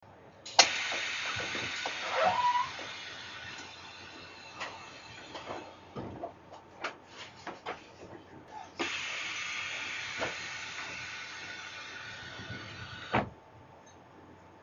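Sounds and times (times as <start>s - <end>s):
automatic inner train door opening and closing: 0.5s - 6.4s, 8.8s - 13.4s.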